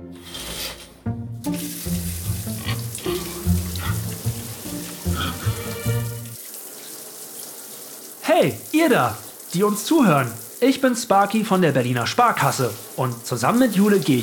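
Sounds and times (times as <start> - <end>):
shower water running: 0.2 - 14.2
low humming drone from the pipes: 0.7 - 6.4
speech: 8.4 - 14.2.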